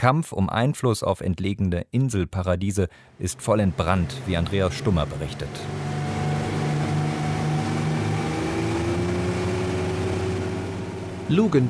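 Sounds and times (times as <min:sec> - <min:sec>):
speech: 0:00.0 - 0:06.0, 0:11.3 - 0:11.6
motorboat engine droning as the boat heads out to sea off Luganville Vanuatu: 0:03.2 - 0:11.6.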